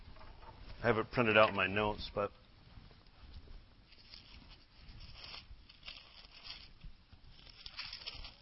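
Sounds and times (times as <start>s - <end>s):
speech: 0.8s - 2.4s
thin pages of a paper Bible rustling as they are turned: 3.9s - 8.4s.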